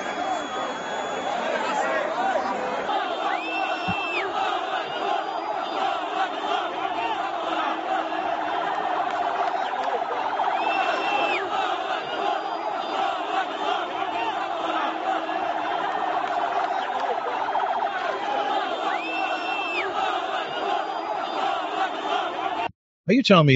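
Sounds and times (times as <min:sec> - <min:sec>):
Red Cross ambulance siren wailing: 0:00.0 - 0:02.0
dense crowd shouting and chattering: 0:00.0 - 0:22.7
speech: 0:23.1 - 0:23.5.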